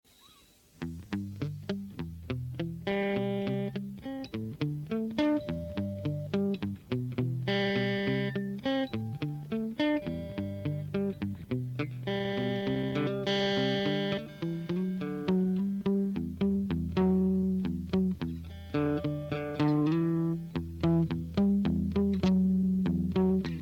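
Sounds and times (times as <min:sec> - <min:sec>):
plucked guitar melody: 0:00.8 - 0:23.6.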